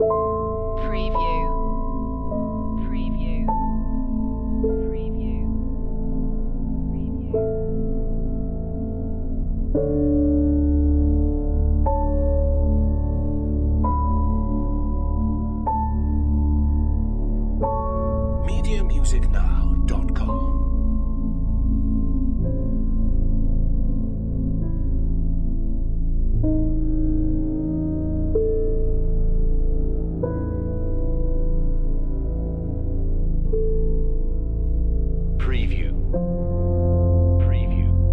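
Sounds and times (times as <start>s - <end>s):
creepy ambient loop: 0.0s - 38.1s.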